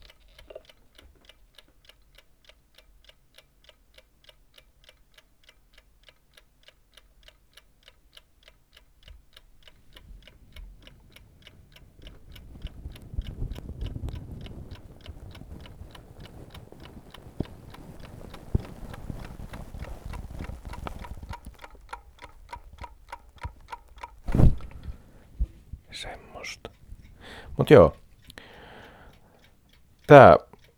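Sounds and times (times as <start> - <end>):
alarm clock ticking in a bedroom: 0.0 - 30.7
faint hiss: 8.4 - 30.7
speech: 27.6 - 28.0, 30.1 - 30.4.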